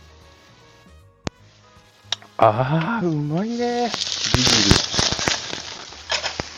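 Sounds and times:
eggplant grilling over an open flame: 2.0s - 6.5s
speech: 2.4s - 5.0s.

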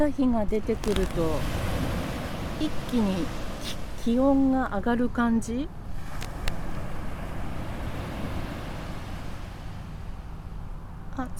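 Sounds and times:
speech: 0.0s - 1.6s, 2.6s - 5.8s, 11.2s - 11.3s
ocean waves roaring with deep rumbling low end: 0.0s - 11.3s.

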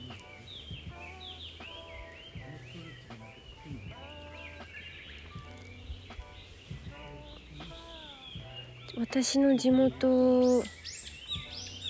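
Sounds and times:
indistinct lower vocal sounds: 0.0s - 4.8s, 6.9s - 9.0s
birds chirping and calling in a forest: 0.0s - 11.8s
steady outdoor ambience: 0.0s - 11.8s
speech: 9.0s - 10.8s.

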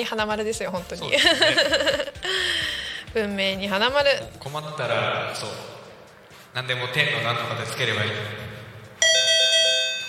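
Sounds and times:
speech: 0.0s - 5.7s, 6.5s - 8.5s
laughter: 1.1s - 2.7s
bright bell-like ding-dong chime: 9.0s - 10.0s.

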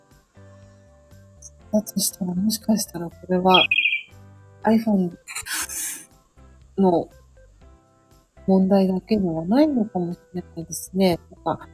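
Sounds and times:
speech: 1.7s - 3.8s, 4.6s - 5.5s, 6.8s - 7.2s, 8.5s - 11.7s
high-pitched bird chirp: 3.5s - 4.1s.

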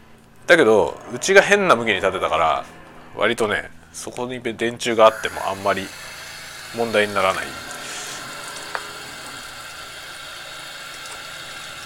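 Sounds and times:
speech: 0.5s - 6.1s, 6.7s - 7.7s
hot water draining from an instant yakisoba noodle cup: 5.1s - 11.8s.

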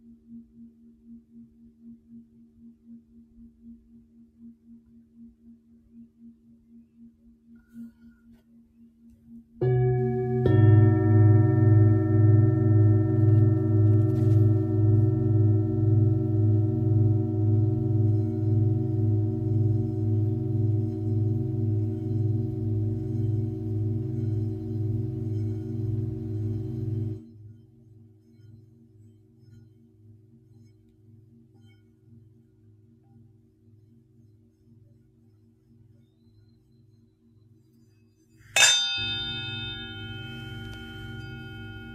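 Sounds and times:
singing bowl ringing with deep pulsing tone and bright overtones: 9.6s - 27.3s, 38.5s - 41.9s.

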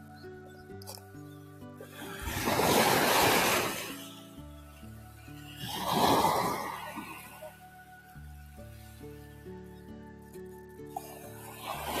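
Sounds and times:
ocean waves breaking on the shore before sunrise: 1.8s - 7.7s, 10.9s - 11.9s.

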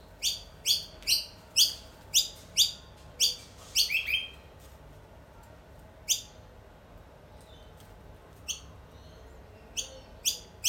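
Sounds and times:
birds chirping: 0.0s - 4.6s, 7.2s - 10.6s.

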